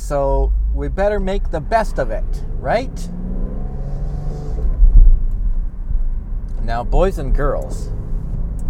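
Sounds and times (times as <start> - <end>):
car engine rumbling while driven into the city: 0.0 - 8.6
speech: 0.1 - 3.2, 6.7 - 8.0.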